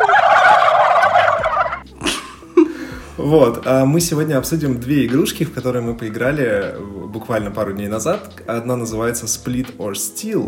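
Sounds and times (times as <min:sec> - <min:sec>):
turkey gobbling: 0:00.0 - 0:01.9
speech: 0:03.2 - 0:10.4.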